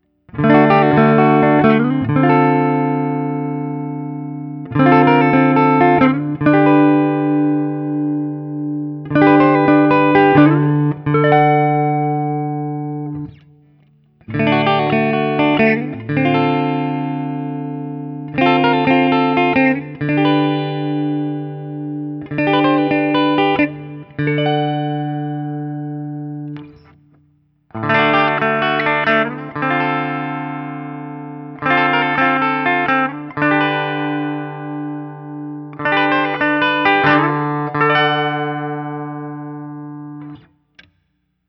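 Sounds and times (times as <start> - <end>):
Guild NS M75 goldtop electric guitar: 0.0 - 41.1.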